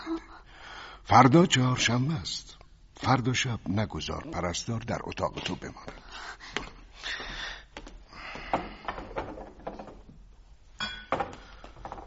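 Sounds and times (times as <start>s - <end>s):
speech: 1.1s - 7.2s
small glass bottle holding a liquid clinking: 10.8s - 11.4s.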